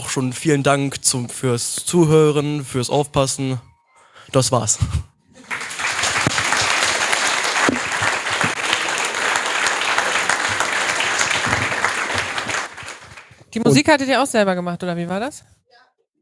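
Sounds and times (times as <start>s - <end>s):
speech: 0.2s - 3.7s, 4.3s - 5.1s, 13.6s - 15.6s
audience applause: 5.4s - 13.8s.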